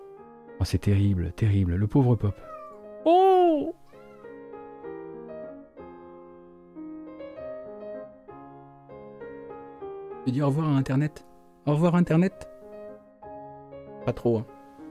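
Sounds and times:
speech: 0.6 - 3.3, 10.3 - 12.5, 14.0 - 14.5
cat meowing against the wall: 2.3 - 4.4.

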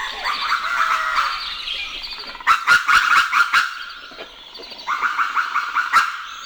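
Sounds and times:
birds singing at sunrise in Sonoma Valley, California: 0.0 - 6.4.

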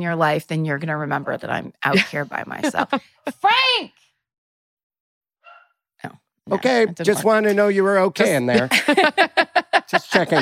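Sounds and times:
speech: 0.0 - 4.0, 6.0 - 10.4
laughter: 2.0 - 3.4, 6.5 - 10.4
dog barking: 5.4 - 5.8.

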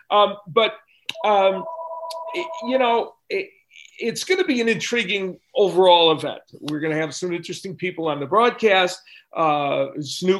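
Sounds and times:
speech: 0.1 - 10.3
phone ringing with incoming call: 1.2 - 2.9.

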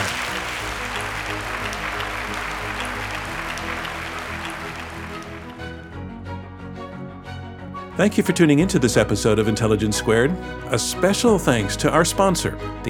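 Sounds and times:
large audience at a live debate applauding: 0.0 - 6.0
music: 0.0 - 12.8
speech: 8.0 - 12.8.

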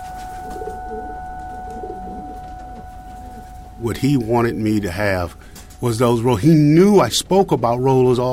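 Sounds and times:
pigeons cooing: 0.0 - 6.2
steady hum: 0.0 - 8.3
speech: 3.8 - 8.3.

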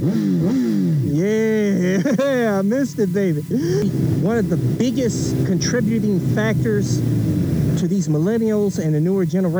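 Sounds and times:
motorcycle engine revving as ride starts: 0.0 - 9.5
laughter: 0.6 - 7.0
speech: 2.1 - 9.5.

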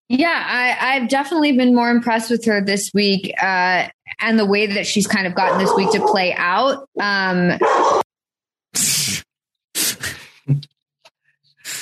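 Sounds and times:
speech: 0.1 - 8.0, 8.7 - 9.3
soft dog yip: 5.4 - 6.2, 7.6 - 8.0
several sharp dog barks: 5.4 - 6.4, 7.6 - 8.1.

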